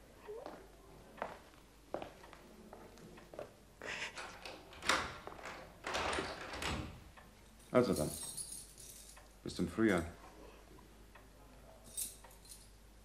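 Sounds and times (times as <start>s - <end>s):
soft footsteps: 0.3s - 3.6s
door being closed and locked in a furnished house: 4.4s - 7.1s
speech: 7.8s - 8.2s, 9.6s - 10.2s.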